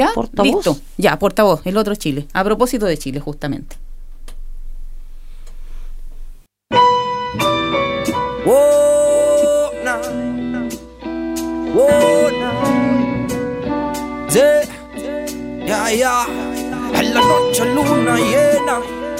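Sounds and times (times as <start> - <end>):
speech: 0.0 - 3.8, 15.7 - 19.0
Chilean hip-hop track with deep bass and melodic samples: 7.2 - 19.1.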